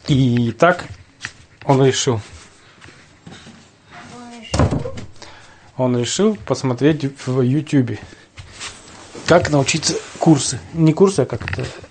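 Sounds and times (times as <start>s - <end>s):
speech: 0.1s - 1.0s, 1.6s - 2.4s, 5.8s - 8.2s, 9.3s - 11.8s
door shutting with a thud: 4.5s - 5.2s.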